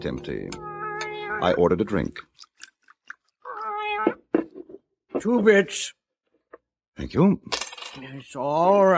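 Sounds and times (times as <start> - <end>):
speech: 0.0 - 0.7, 1.3 - 2.5, 5.2 - 6.0, 7.0 - 8.9
cat sitting on a bar meowing: 0.6 - 1.6, 3.4 - 4.2.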